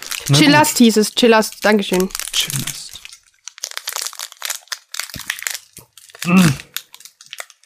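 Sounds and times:
plastic card packet crinkling as it is tugged open: 0:00.0 - 0:07.6
person grunting while struggling to open a packet: 0:00.3 - 0:00.7, 0:06.3 - 0:06.7
speech: 0:00.3 - 0:02.9, 0:06.2 - 0:06.7.

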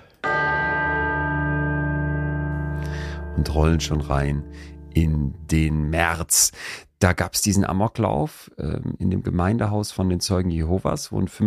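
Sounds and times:
deep bell struck and ringing: 0:00.1 - 0:06.0
speech: 0:03.4 - 0:11.4.

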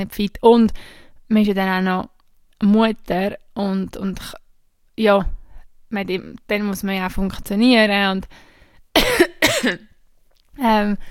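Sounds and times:
speech: 0:00.0 - 0:04.4, 0:05.0 - 0:09.9, 0:10.6 - 0:11.0
woman coughing: 0:09.0 - 0:09.9.

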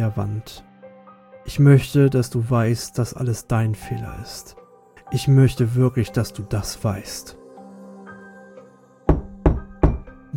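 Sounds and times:
speech: 0:00.0 - 0:00.7, 0:01.4 - 0:07.4
sharp hollow knocks: 0:09.1 - 0:10.2.

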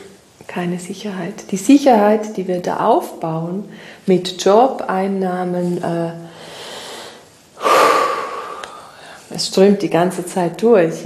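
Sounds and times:
speech: 0:00.5 - 0:06.2, 0:09.4 - 0:11.0
person taking a deep breath: 0:06.3 - 0:09.3.

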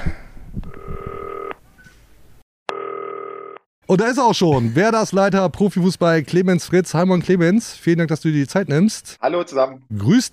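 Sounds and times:
telephone ringing with a steady electronic tone: 0:00.7 - 0:01.6, 0:02.7 - 0:03.6
speech: 0:03.9 - 0:10.3.

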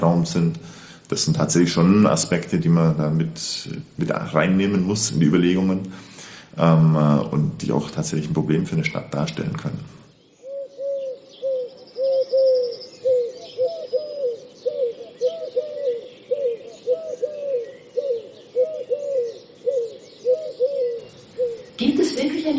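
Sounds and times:
speech: 0:00.0 - 0:10.0
faint higher chirps from other birds: 0:00.0 - 0:22.5
pigeons cooing: 0:10.4 - 0:22.5.

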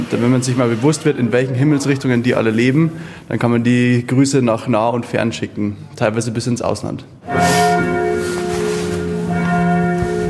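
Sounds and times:
speech: 0:00.1 - 0:07.9
church tower bell striking the hour: 0:07.3 - 0:10.2.

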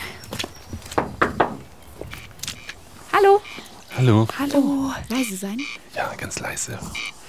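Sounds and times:
knocks on the wooden door of a bird-protection association's observation hut: 0:01.0 - 0:01.7
speech: 0:03.2 - 0:07.2.

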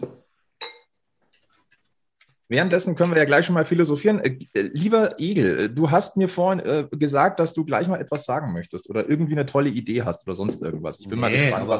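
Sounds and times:
wheat beer glasses filled with wheat beer clinking in a toast: 0:00.6 - 0:01.0
speech: 0:02.5 - 0:11.7.

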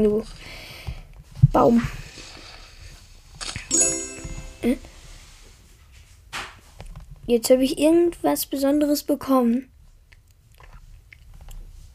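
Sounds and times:
speech: 0:00.0 - 0:00.6, 0:01.5 - 0:02.0, 0:04.6 - 0:04.9, 0:07.3 - 0:09.7
crunchy chewing of a melon in a video game: 0:10.2 - 0:11.7.

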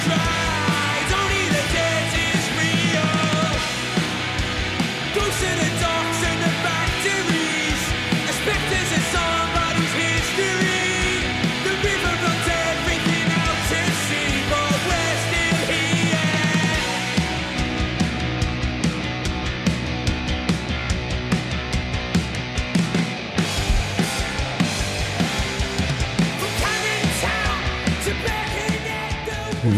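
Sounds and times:
reverb-soaked garage rock song with drums and distorted guitars: 0:00.0 - 0:29.7.

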